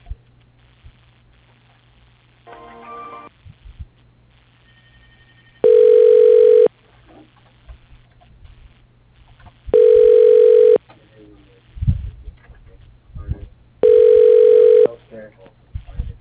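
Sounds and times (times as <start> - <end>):
constant low electrical hum: 0.0 - 16.1
telephone ringback tone during call transfer: 4.6 - 6.7, 9.8 - 10.8, 13.8 - 14.9.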